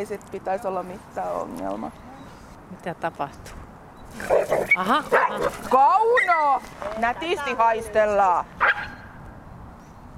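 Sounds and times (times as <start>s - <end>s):
speech: 0.0s - 2.1s, 2.7s - 8.6s
dog barking: 4.3s - 5.5s, 8.6s - 9.0s.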